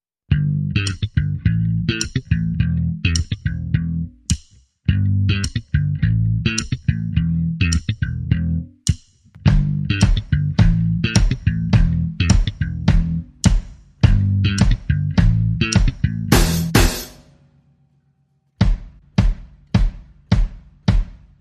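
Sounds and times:
bass: 0.2s - 21.4s
drums: 8.9s - 17.3s, 18.6s - 21.4s.

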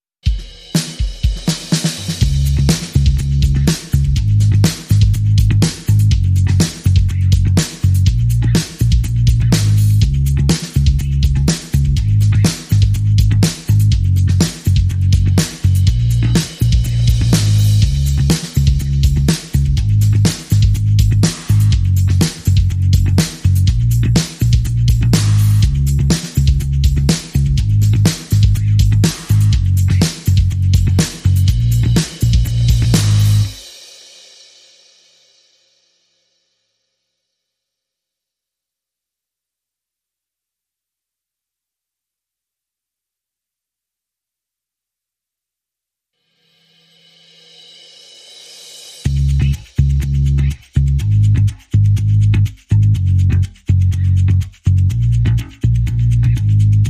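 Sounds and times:
upbeat drum and bass music: 0.3s - 33.7s, 48.9s - 56.8s.

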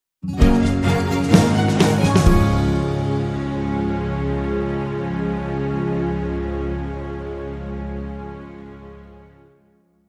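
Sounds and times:
short music sting without electric guitar: 0.3s - 7.1s.

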